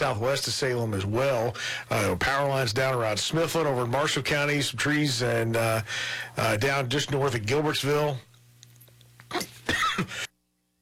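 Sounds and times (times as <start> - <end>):
speech: 0.0 - 8.3
faint hum: 0.0 - 10.7
person coughing harshly: 9.3 - 10.3.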